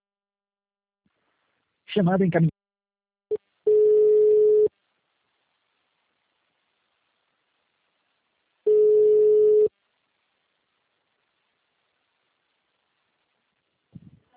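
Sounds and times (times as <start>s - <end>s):
speech: 2.0s - 2.5s
telephone line busy signal beeps after a dropped call: 3.7s - 4.7s, 8.7s - 9.7s
telephone line blip after a dropped call: 8.7s - 9.7s.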